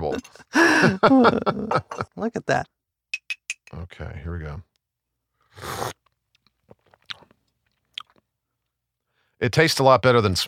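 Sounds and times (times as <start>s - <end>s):
laughter: 0.0s - 2.3s
speech: 0.2s - 4.7s, 5.6s - 6.0s, 9.4s - 10.4s
slurping sip of okra coffee: 5.5s - 6.1s.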